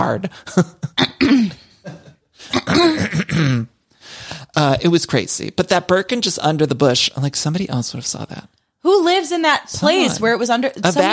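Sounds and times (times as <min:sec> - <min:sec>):
speech: 0:00.0 - 0:01.4, 0:04.6 - 0:11.1
person imitating exaggerated throat clearing: 0:00.2 - 0:03.8.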